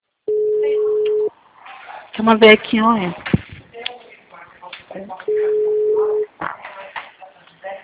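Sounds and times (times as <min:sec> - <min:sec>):
telephone line tone after a dropped call: 0:00.3 - 0:01.3, 0:05.3 - 0:06.3
speech: 0:02.2 - 0:03.2.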